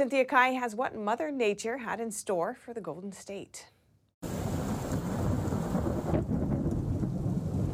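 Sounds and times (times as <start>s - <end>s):
speech: 0.0s - 4.4s
steady hiss of heavy rain: 4.2s - 6.2s
deep rolling thunder from a monsoonal thunderstorm over Southern California: 4.2s - 7.7s.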